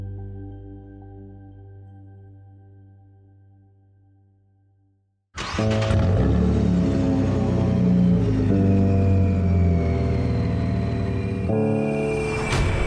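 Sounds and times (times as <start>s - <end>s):
powerful luxury car engine rumbling with a rising whine: 5.4s - 12.7s.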